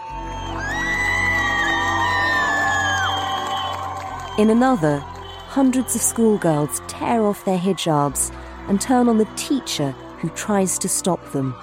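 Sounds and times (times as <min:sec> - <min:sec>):
large outdoor street crowd cheering: 0:00.0 - 0:08.3
speech: 0:04.4 - 0:11.6.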